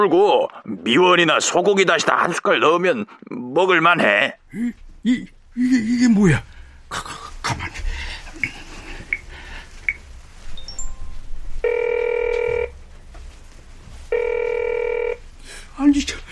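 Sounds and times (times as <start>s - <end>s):
speech: 0.0s - 7.8s, 15.8s - 16.3s
telephone ringing electronically: 10.6s - 12.8s, 14.1s - 15.2s.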